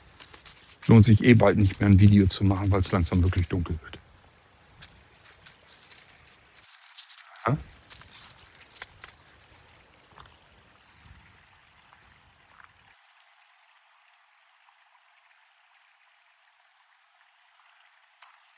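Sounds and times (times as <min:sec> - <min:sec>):
footstep-like crunches: 0:00.0 - 0:04.0, 0:04.6 - 0:12.8
small stream babbling with light splashes: 0:00.0 - 0:18.5
speech: 0:00.9 - 0:04.0, 0:07.5 - 0:07.7.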